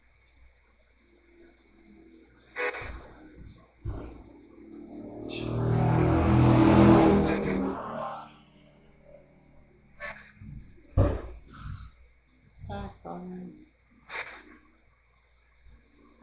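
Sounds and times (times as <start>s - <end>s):
loud car driving by with engine revving: 4.0s - 9.9s.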